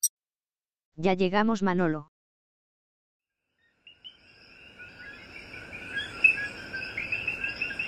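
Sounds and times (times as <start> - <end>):
speech: 1.0 - 2.1
chorus of coquí frogs calling at dawn in El Yunque rainforest, Puerto Rico: 3.5 - 7.8.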